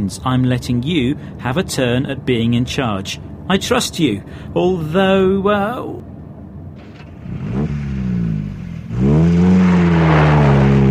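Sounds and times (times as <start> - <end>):
speech: 0.0 - 6.1
car engine revving while driving and accelerating: 6.8 - 10.8.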